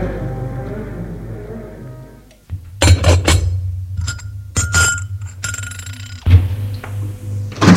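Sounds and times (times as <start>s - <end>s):
low hum: 0.0s - 7.7s
porcelain teacups and saucers clinking in a salon: 4.0s - 6.3s.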